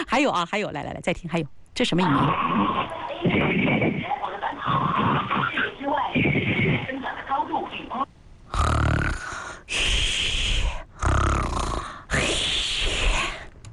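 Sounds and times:
speech: 0:00.2 - 0:06.9
sleeping person snoring in a phone voice message: 0:08.5 - 0:13.5.

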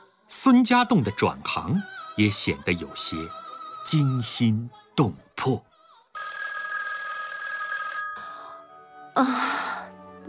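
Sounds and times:
speech: 0:00.3 - 0:06.4, 0:09.2 - 0:09.6
telephone bell ringing: 0:06.2 - 0:09.0.

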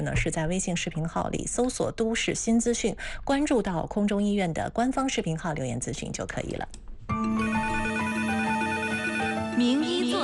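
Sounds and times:
speech: 0:00.0 - 0:07.7, 0:09.6 - 0:10.2
electronic telephone ringtone signalling an incoming hotline call: 0:07.3 - 0:09.8.

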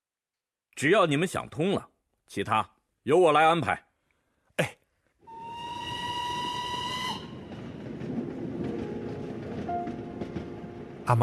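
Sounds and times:
speech: 0:00.8 - 0:03.9, 0:04.6 - 0:04.8
steam train whistle on a train bound for Yan'an: 0:05.3 - 0:07.6
steam train rumbling and hissing travel noise: 0:05.6 - 0:11.2.

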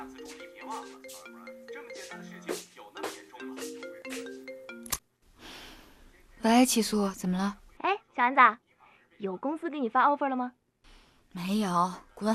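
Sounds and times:
phone's melodic ringtone: 0:00.0 - 0:05.0
speech: 0:00.7 - 0:02.6, 0:06.4 - 0:07.6, 0:08.2 - 0:08.6, 0:09.2 - 0:10.6, 0:11.4 - 0:12.3.

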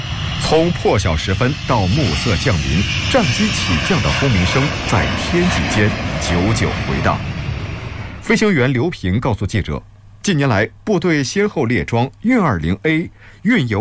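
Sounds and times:
military transport jet engines roaring on takeoff: 0:00.0 - 0:08.8
people talking: 0:00.4 - 0:07.2, 0:08.2 - 0:13.7.

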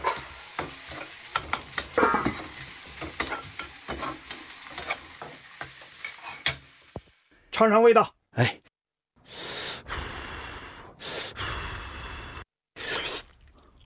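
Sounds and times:
food stir-frying in a hot pan: 0:00.0 - 0:07.3
speech: 0:07.6 - 0:08.6.

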